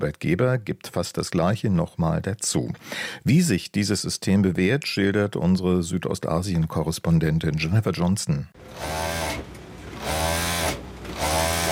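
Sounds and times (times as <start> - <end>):
speech: 0.0 - 9.4
sewing machine whirring: 8.6 - 11.6.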